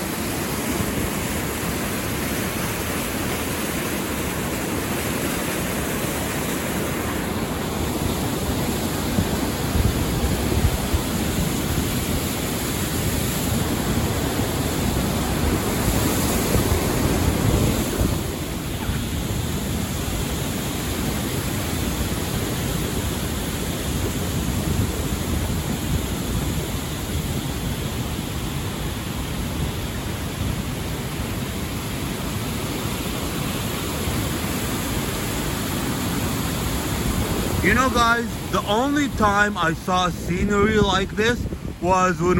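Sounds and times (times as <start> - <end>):
rushing waterfall: 0.0 - 42.3
gusts of wind buffeting the microphone: 6.3 - 28.5, 36.3 - 42.3
speech: 37.8 - 42.3.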